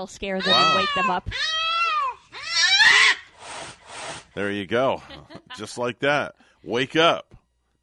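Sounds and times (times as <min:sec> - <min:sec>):
speech: 0:00.0 - 0:01.6, 0:04.4 - 0:07.8
cat meowing: 0:00.4 - 0:03.2.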